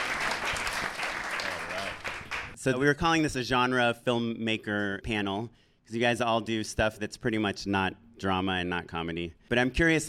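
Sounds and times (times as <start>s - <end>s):
audience at a film panel event clapping: 0.0s - 2.6s
speech: 2.6s - 10.0s.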